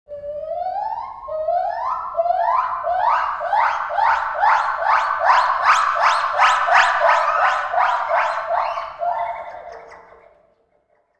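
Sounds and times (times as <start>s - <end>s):
jungle call: 1.6s - 10.1s.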